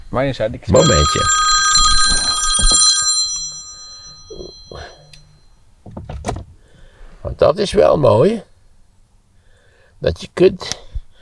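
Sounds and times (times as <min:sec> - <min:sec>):
speech: 0:00.1 - 0:01.5, 0:07.4 - 0:08.5, 0:10.0 - 0:10.8
telephone bell ringing with metallic jangle: 0:00.8 - 0:05.4.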